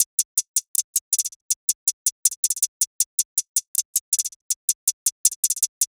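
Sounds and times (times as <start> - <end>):
sneaky 160 hi-hat loop: 0.0 - 5.9.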